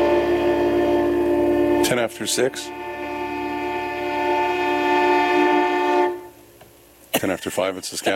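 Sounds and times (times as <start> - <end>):
train horn blast: 0.0 - 6.4
speech: 1.9 - 2.9, 7.2 - 8.1.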